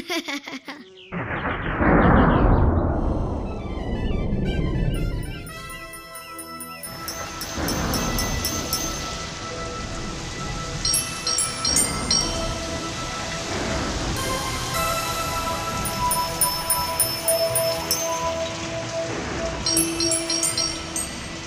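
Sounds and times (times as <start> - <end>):
heavy rain pouring down: 1.2 - 21.4
faint tonal layer: 4.4 - 21.4.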